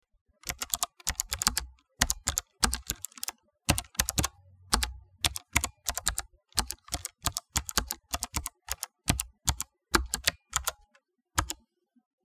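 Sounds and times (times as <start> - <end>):
slow typing on a mechanical keyboard: 0.4 - 11.6.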